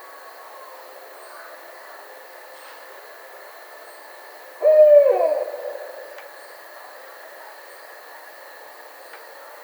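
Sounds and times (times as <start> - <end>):
barred owl hooting: 4.6 - 6.2.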